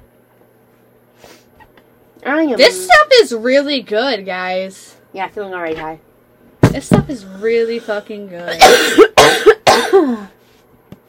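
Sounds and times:
speech: 0:02.2 - 0:06.1, 0:06.7 - 0:10.3
harsh coughs trailing into a hoarse voiced rasp: 0:08.5 - 0:10.3.

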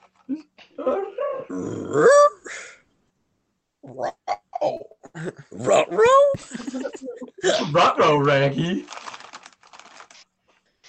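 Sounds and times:
person imitating a worried dog growl: 0:00.4 - 0:02.7, 0:03.8 - 0:06.4
speech: 0:01.6 - 0:02.2, 0:07.8 - 0:08.9
laughter: 0:06.2 - 0:07.5.

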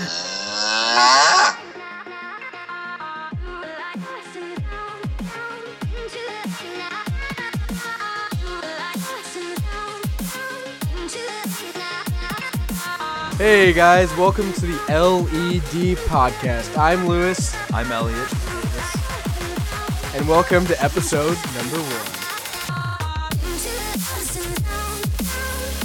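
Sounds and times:
loud drawn-out cow moo: 0:00.0 - 0:01.7
steady music with a thumping bass beat: 0:03.3 - 0:03.6, 0:04.6 - 0:08.6, 0:09.6 - 0:25.8
speech: 0:13.4 - 0:18.4, 0:20.2 - 0:22.2.

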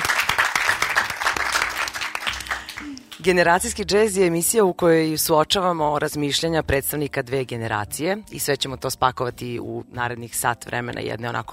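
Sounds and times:
studio audience applause at a talk show: 0:00.0 - 0:03.3
speech: 0:03.2 - 0:11.5.

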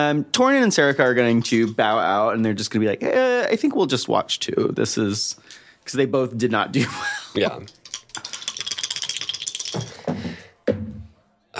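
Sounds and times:
speech: 0:00.0 - 0:07.8
two dice rattling in a cup: 0:07.4 - 0:10.1.

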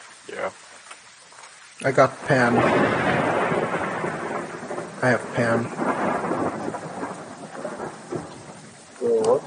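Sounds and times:
heavy rain in a video game: 0:00.0 - 0:09.4
speech: 0:00.3 - 0:00.7, 0:01.8 - 0:03.2, 0:05.0 - 0:06.2
low thunder rumbling: 0:01.9 - 0:09.4.

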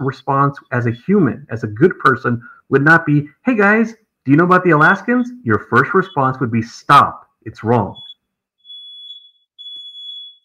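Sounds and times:
speech: 0:00.0 - 0:08.0
smoke alarm beeping: 0:05.2 - 0:06.4, 0:07.9 - 0:10.4.

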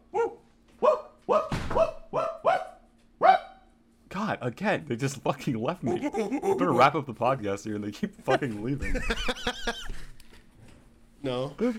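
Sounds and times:
dog barking: 0:00.1 - 0:03.7
speech: 0:04.5 - 0:09.9, 0:11.2 - 0:11.7
laughter: 0:05.9 - 0:07.0, 0:08.3 - 0:10.2.

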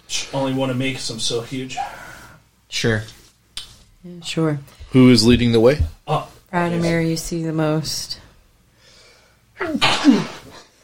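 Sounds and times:
speech: 0:00.1 - 0:02.0, 0:02.7 - 0:03.2, 0:04.0 - 0:08.2, 0:09.6 - 0:10.4
loud sneeze with sharp intake of breath: 0:09.6 - 0:10.7.

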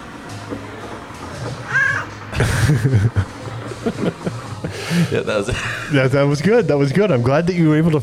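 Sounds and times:
hungry cat meowing for food: 0:01.7 - 0:02.1
laughter: 0:02.2 - 0:06.4
speech: 0:02.4 - 0:08.0.

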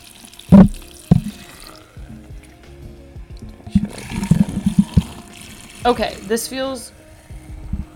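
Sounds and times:
liquid pouring with splashes, trickle and glugging: 0:00.0 - 0:02.0, 0:03.5 - 0:06.4
speech: 0:05.8 - 0:07.0.

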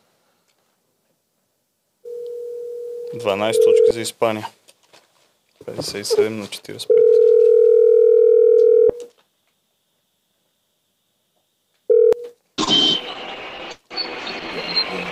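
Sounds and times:
telephone dial tone: 0:02.1 - 0:03.9, 0:06.9 - 0:09.0, 0:11.9 - 0:12.3
speech: 0:03.1 - 0:04.6, 0:05.6 - 0:07.1.

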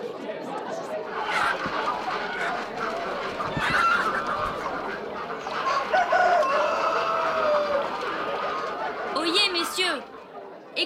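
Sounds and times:
flock of poultry clucking and cackling: 0:00.2 - 0:10.7
agitated poultry squawks: 0:01.2 - 0:06.3, 0:07.1 - 0:10.3
rooster crowing: 0:05.4 - 0:09.0.

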